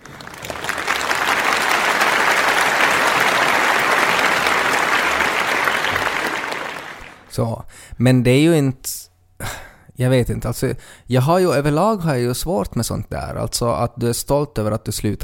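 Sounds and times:
big round of applause from a crowd: 0.0s - 7.3s
speech: 7.4s - 15.2s.

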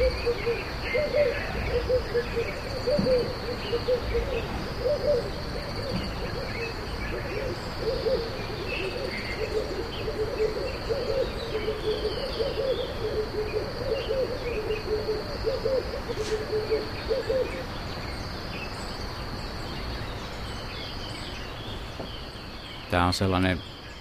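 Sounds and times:
low hoot-like calls: 0.0s - 17.7s
crickets chirping at night in Ethiopia: 0.0s - 23.9s
speech: 23.0s - 23.7s.

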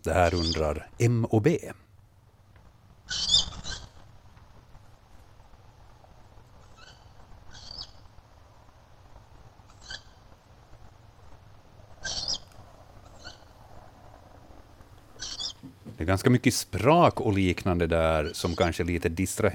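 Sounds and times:
speech: 0.0s - 1.8s, 3.1s - 3.4s, 16.1s - 19.5s
low steady rumble: 0.0s - 19.5s
tawny owl chicks giving hissing high-pitched calls from old trees in a yard: 0.1s - 0.8s, 3.0s - 4.0s, 6.6s - 8.2s, 9.6s - 10.3s, 11.9s - 13.8s, 15.1s - 15.6s, 18.2s - 18.8s.

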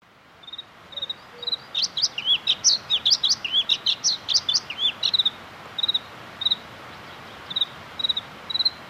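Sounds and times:
bluethroat singing: 1.0s - 5.4s.

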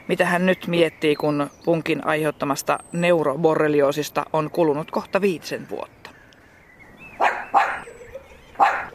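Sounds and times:
speech: 0.1s - 6.0s
dog barking outdoors in a home yard: 7.2s - 7.9s, 8.6s - 8.9s.

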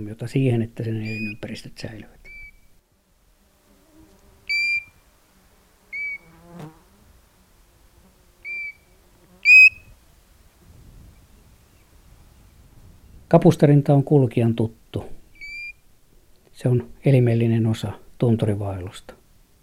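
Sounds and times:
speech: 0.0s - 2.2s, 13.3s - 15.1s, 16.6s - 19.2s
European golden plover whistling call: 1.0s - 1.4s, 2.2s - 2.7s, 4.5s - 5.0s, 5.9s - 6.3s, 8.4s - 9.9s, 15.4s - 15.8s.

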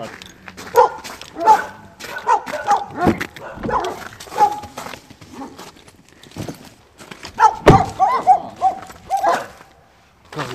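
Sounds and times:
rescue dogs barking: 0.6s - 5.7s, 7.3s - 9.8s.

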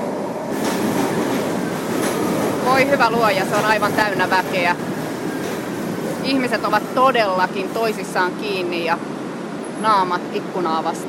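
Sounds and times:
metro train wheels clattering on rails: 0.0s - 8.4s
metro train arriving at station rumbling: 0.0s - 11.0s
speech: 2.8s - 4.9s, 6.2s - 9.1s, 9.8s - 11.0s.

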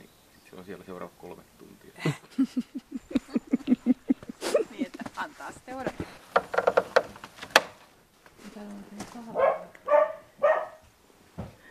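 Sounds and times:
speech: 0.6s - 3.2s
laughter: 2.0s - 6.0s
scattered clicks and rustling: 4.9s - 9.2s
hunting dog barking at a raccoon dog: 9.3s - 10.8s.

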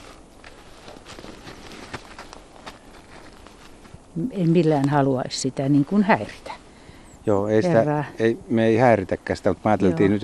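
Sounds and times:
footsteps crunching over rough outdoor ground: 0.0s - 4.9s
broad hiss: 0.0s - 10.2s
speech: 4.2s - 6.5s, 7.2s - 10.2s.

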